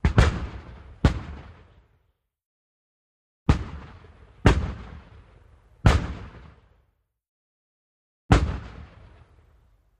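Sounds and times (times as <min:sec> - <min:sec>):
distant mortars firing: 0:00.0 - 0:01.7, 0:03.5 - 0:06.7, 0:08.3 - 0:09.4.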